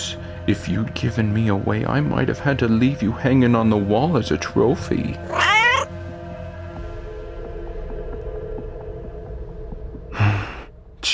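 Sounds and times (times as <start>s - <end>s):
speech: 0.5s - 5.4s
cat meowing: 5.2s - 5.9s.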